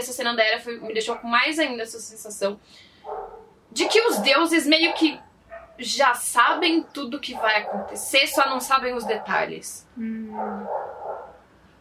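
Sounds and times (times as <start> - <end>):
speech: 0.0 - 11.0
faint hum: 0.0 - 11.7
dog barking: 3.0 - 5.8, 6.5 - 9.5, 10.3 - 11.4.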